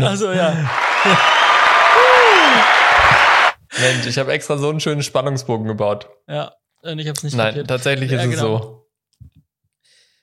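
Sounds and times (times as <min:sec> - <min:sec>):
speech: 0:00.0 - 0:01.5, 0:03.8 - 0:08.8
laughter: 0:00.4 - 0:01.9
applause sound effect played from a soundboard: 0:00.5 - 0:03.6.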